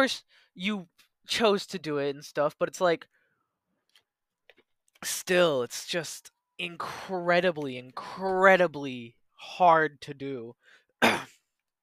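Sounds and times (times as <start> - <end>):
speech: 0.0 - 3.2, 5.0 - 11.3
harsh throat clearing from a speaker with a slight sore throat: 11.0 - 11.4.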